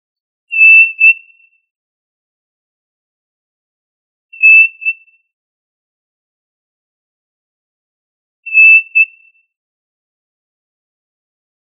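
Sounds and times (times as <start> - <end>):
tinamou whistles: 0.5 - 1.5, 4.4 - 5.1, 8.5 - 9.4.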